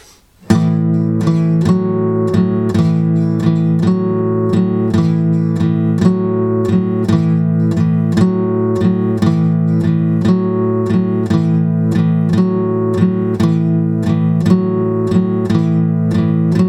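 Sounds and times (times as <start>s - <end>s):
guitar strumming an A-chord pattern: 0.0s - 16.6s.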